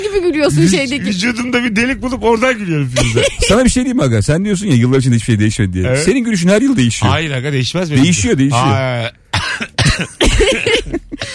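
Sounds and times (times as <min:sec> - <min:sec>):
speech: 0:00.0 - 0:10.6
harsh coughing: 0:03.0 - 0:03.6, 0:09.3 - 0:11.3
laughter: 0:03.0 - 0:03.8, 0:10.2 - 0:11.3.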